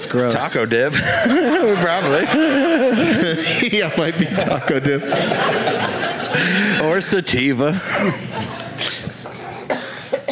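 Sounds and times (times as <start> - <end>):
speech: 0.0 - 9.0
laughter: 0.6 - 10.3
person coughing harshly: 8.8 - 10.3.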